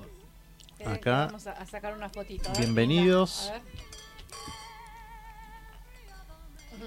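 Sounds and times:
speech: 0:00.8 - 0:04.4
crystal glasses clinking in a toast: 0:02.4 - 0:04.9, 0:06.1 - 0:06.8.

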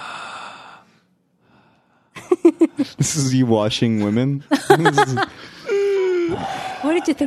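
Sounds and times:
heavy breathing: 0:00.0 - 0:02.2, 0:05.3 - 0:07.2
laughter: 0:02.2 - 0:07.2
speech: 0:02.8 - 0:05.4, 0:06.3 - 0:07.2.

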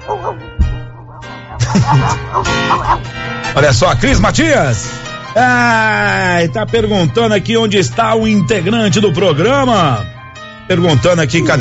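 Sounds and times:
dog barking: 0:00.0 - 0:00.4
laughter: 0:00.0 - 0:00.5, 0:01.5 - 0:03.6
steady low hum: 0:00.2 - 0:03.1
speech: 0:01.9 - 0:10.1, 0:10.7 - 0:11.6.

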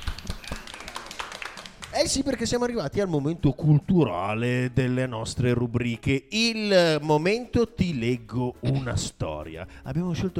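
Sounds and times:
studio applause from a small group: 0:00.0 - 0:02.4
speech: 0:02.0 - 0:10.3.

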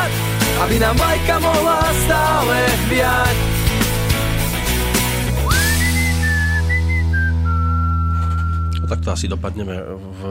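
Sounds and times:
rhythmic music with percussion: 0:00.0 - 0:06.9
speech: 0:00.6 - 0:03.5, 0:08.9 - 0:10.2
clear high whistled melody: 0:05.3 - 0:09.2.

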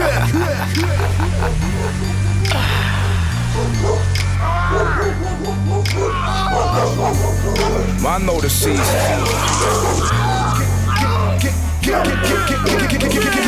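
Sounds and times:
laughter: 0:00.0 - 0:13.4
steady low droning musical bed: 0:00.0 - 0:13.4
pack of hounds barking at night: 0:00.7 - 0:02.5, 0:03.2 - 0:13.4
speech: 0:08.2 - 0:09.5.

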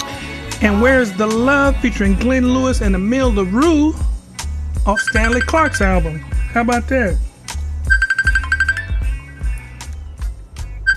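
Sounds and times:
thumping bass-heavy music groove: 0:00.0 - 0:10.9
speech: 0:00.6 - 0:04.1, 0:04.8 - 0:07.2
electronic telephone ring from a long-distance call: 0:04.9 - 0:05.9, 0:07.9 - 0:09.1.

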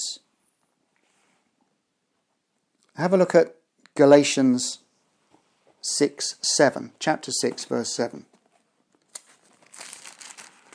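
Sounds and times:
speech: 0:03.0 - 0:04.8, 0:05.8 - 0:08.3
paper pages of a Bible leafed through by hand: 0:07.4 - 0:10.7.

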